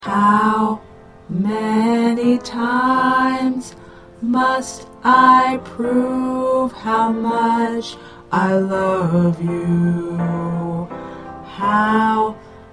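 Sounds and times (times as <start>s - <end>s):
tenor singing: 0.0s - 12.7s.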